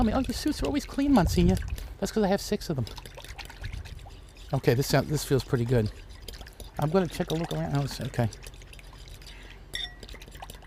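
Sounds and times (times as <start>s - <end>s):
speech: 0.0s - 3.2s, 4.5s - 6.1s, 6.8s - 8.5s
oil and honey mixture swirling: 0.0s - 10.6s
spoon clinking against the container: 9.7s - 10.2s.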